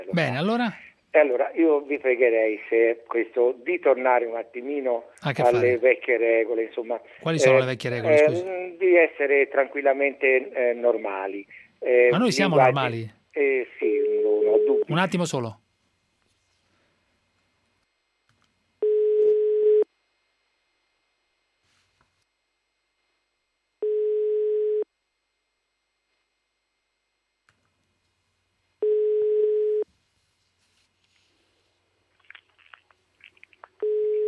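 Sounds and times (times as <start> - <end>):
speech: 0.1 - 15.6
telephone answering machine electronic tones: 13.9 - 14.9, 18.8 - 19.9, 23.8 - 24.8, 28.8 - 29.8, 33.8 - 34.2.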